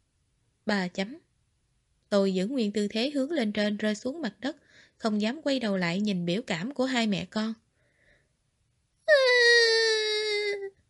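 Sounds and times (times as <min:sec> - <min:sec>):
speech: 0:00.7 - 0:01.3, 0:02.1 - 0:07.6
little girl crying loudly: 0:09.1 - 0:10.7.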